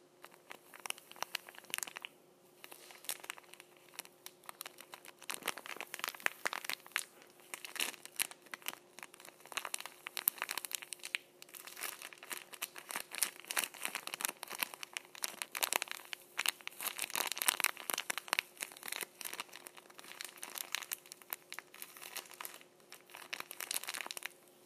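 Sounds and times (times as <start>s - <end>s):
faint steady hum: 0.0s - 24.6s
tissues gripped and crumpled: 0.2s - 24.5s.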